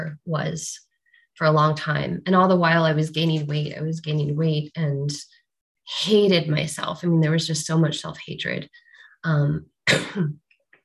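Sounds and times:
speech: 0.0 - 10.4
person coughing and clearing throat: 9.9 - 10.4.

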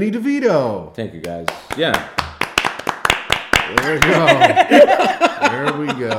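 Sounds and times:
speech: 0.0 - 2.2, 3.7 - 6.1
people clapping: 1.2 - 5.2
laughter: 3.8 - 6.1.

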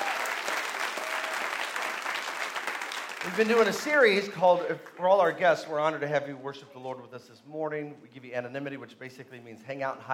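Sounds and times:
church audience clapping in praise at a morning worship service: 0.0 - 5.4
speech: 3.2 - 10.1.

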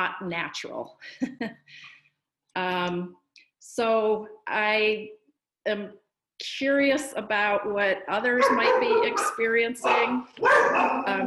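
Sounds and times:
speech: 0.0 - 2.0, 2.6 - 11.2
dog barking: 8.4 - 11.2.

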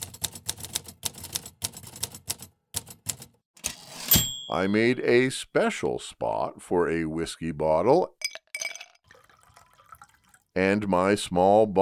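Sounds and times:
mechanical typewriter keystrokes clattering: 0.0 - 4.5
speech: 4.5 - 8.2, 10.6 - 11.8.

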